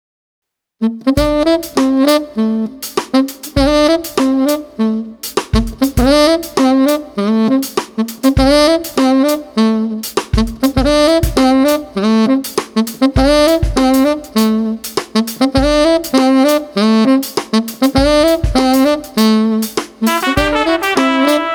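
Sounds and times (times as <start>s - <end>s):
street saxophone: 0.8s - 21.5s
trumpet: 0.8s - 21.5s
smooth drums: 1.1s - 21.5s.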